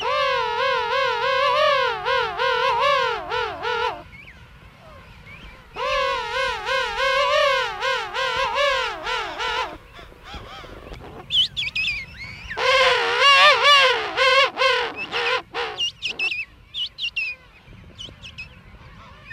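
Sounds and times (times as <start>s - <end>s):
penguin calling in a dense colony: 0.0s - 4.0s, 5.8s - 9.8s, 12.6s - 16.4s
other birds in penguin colony calling: 0.0s - 19.3s.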